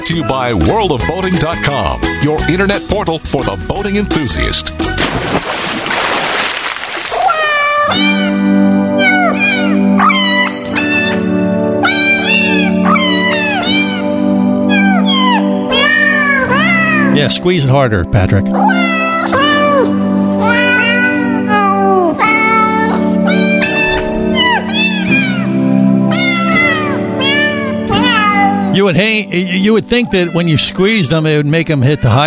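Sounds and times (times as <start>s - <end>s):
speech: 0.1s - 5.4s, 17.2s - 18.8s, 28.8s - 32.2s
water splashing: 4.9s - 7.6s
cat meowing and yowling: 7.1s - 8.4s, 9.0s - 14.1s, 14.7s - 17.1s, 18.6s - 22.6s, 23.3s - 28.7s, 29.9s - 30.7s.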